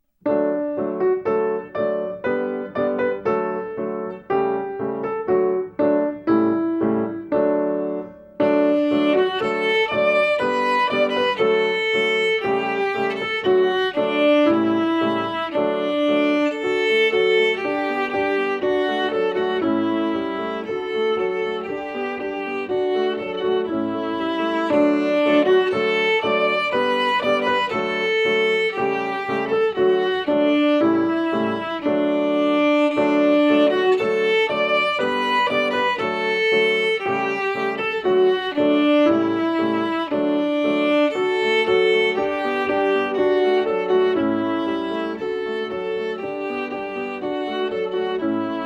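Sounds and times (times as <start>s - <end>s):
violin: 0.3s - 48.6s.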